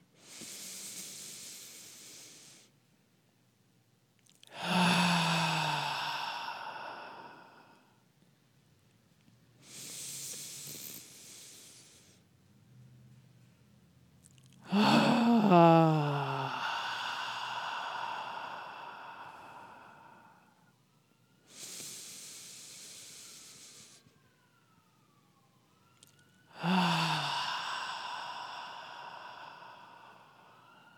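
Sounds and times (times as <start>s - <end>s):
deep breaths in through the nose during a guided breathing exercise: 0.2s - 2.8s, 4.5s - 7.9s, 9.6s - 12.3s, 14.7s - 20.6s, 21.4s - 24.3s, 26.5s - 30.9s.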